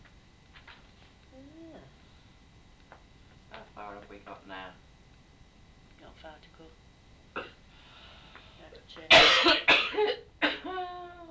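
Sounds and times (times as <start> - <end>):
speech: 6.2 - 6.9, 8.9 - 10.2
person coughing harshly: 9.1 - 11.0.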